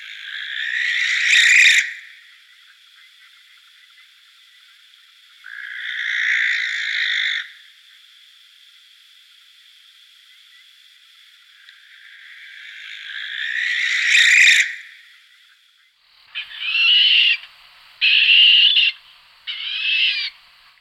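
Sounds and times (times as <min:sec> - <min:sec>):
barn owl shrieking: 0:00.0 - 0:02.2, 0:05.4 - 0:07.6, 0:12.4 - 0:14.9, 0:16.3 - 0:20.4.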